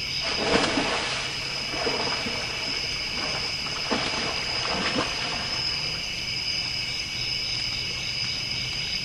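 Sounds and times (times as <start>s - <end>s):
water splashes: 0.1s - 8.9s.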